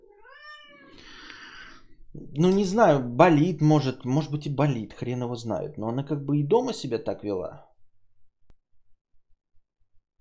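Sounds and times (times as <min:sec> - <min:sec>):
female cat meowing and yowling: 0:00.0 - 0:01.7
speech: 0:02.2 - 0:07.7.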